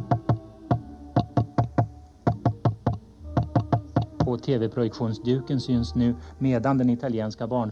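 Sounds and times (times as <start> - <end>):
knocking on a microphone: 0.0 - 4.3
speech: 4.3 - 7.6.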